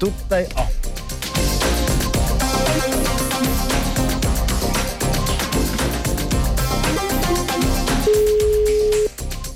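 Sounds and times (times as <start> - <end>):
loud busy music: 0.0 - 9.5
telephone ringback tone after dialing a number: 8.0 - 9.1.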